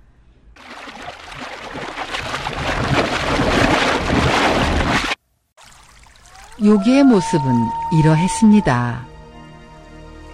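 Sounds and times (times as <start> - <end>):
churning river water splashing as a creature leaps out: 0.6 - 6.6
speech: 6.6 - 9.1.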